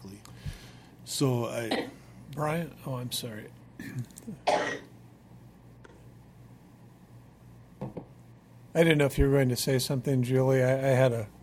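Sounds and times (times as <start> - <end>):
low hum: 0.0 - 11.4
speech: 1.1 - 4.8, 8.8 - 11.4
loud cough: 3.8 - 4.9
throat clearing: 3.8 - 4.9.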